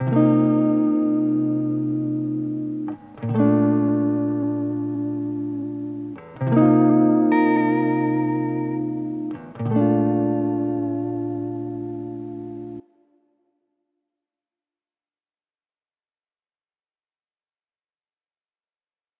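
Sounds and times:
wet electric guitar in A major: 0:00.0 - 0:13.1.

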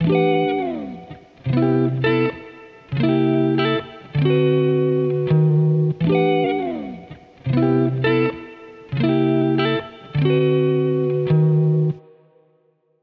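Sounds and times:
lofi electric guitar in E minor with effects: 0:00.0 - 0:12.7.

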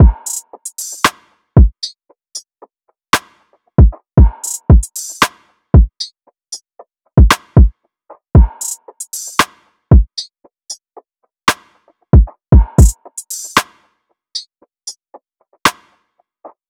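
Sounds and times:
drum loop: 0:00.0 - 0:01.8, 0:03.8 - 0:05.9, 0:07.2 - 0:07.7, 0:08.4 - 0:10.2, 0:12.2 - 0:13.6.

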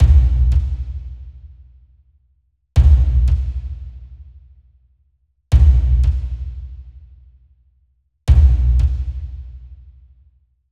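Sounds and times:
deep drum loop in A minor at 87 bpm: 0:00.0 - 0:00.9, 0:02.8 - 0:03.6, 0:08.3 - 0:09.0.

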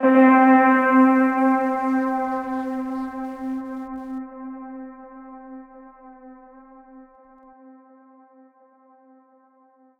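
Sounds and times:
lo-fi hip hop synth pad one shot in C: 0:00.0 - 0:05.8.

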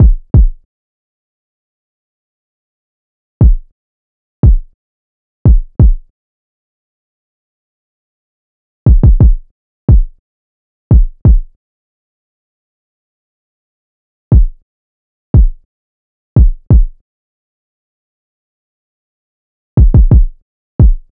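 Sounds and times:
kick drum loop at 88 BPM: 0:00.0 - 0:00.6, 0:03.4 - 0:03.7, 0:04.4 - 0:04.7, 0:05.5 - 0:06.1, 0:08.9 - 0:10.2, 0:10.9 - 0:11.5, 0:14.3 - 0:14.6, 0:15.4 - 0:15.6, 0:16.4 - 0:17.0, 0:19.8 - 0:21.1.

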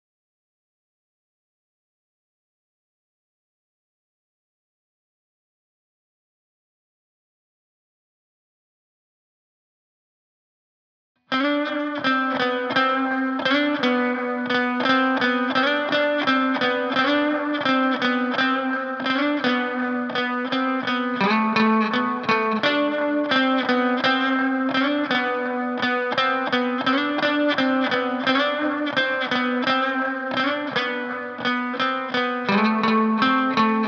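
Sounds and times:
lead guitar in C minor: 0:11.3 - 0:33.8.

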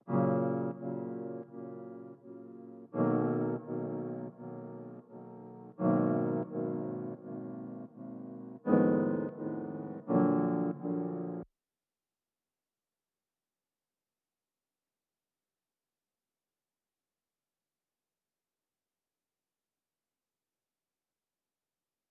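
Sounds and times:
piano loop in D sharp minor: 0:00.1 - 0:11.4.

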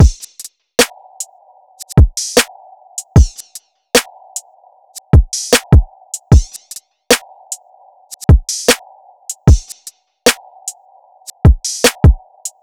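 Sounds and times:
drum loop: 0:00.0 - 0:00.4, 0:01.8 - 0:03.6, 0:05.2 - 0:06.8, 0:08.1 - 0:09.9, 0:11.3 - 0:12.6.

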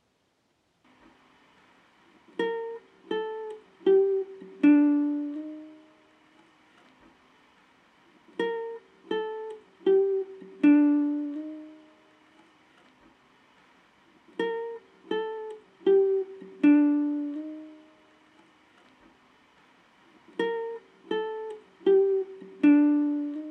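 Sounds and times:
guitar loop in G minor at 80 BPM: 0:02.1 - 0:06.8, 0:08.0 - 0:12.6, 0:14.0 - 0:18.8, 0:19.9 - 0:23.5.

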